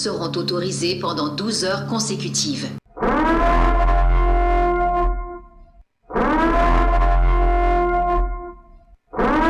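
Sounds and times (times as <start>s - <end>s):
speech: 0.0s - 3.4s
loud wavering alarm siren with metallic echo: 2.9s - 9.4s.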